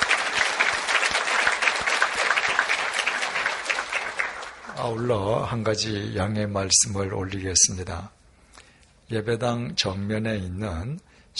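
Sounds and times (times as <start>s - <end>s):
audience applauding: 0.0s - 5.5s
speech: 4.8s - 8.2s, 9.1s - 11.3s.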